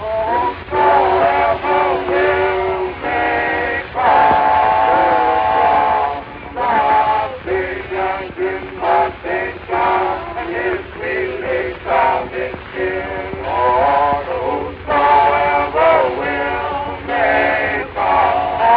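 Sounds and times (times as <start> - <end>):
train whistle blasts: 0.0 - 6.8
train carrying laborers rumbling along tracks out of Jacksonville Florida: 0.0 - 18.7.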